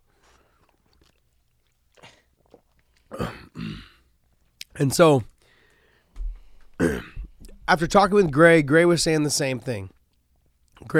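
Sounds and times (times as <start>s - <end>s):
person coughing harshly: 3.1s - 4.0s, 6.8s - 7.3s
person clearing throat: 3.1s - 4.1s, 6.8s - 7.3s
speech: 4.8s - 5.3s, 7.7s - 10.0s, 10.8s - 10.9s.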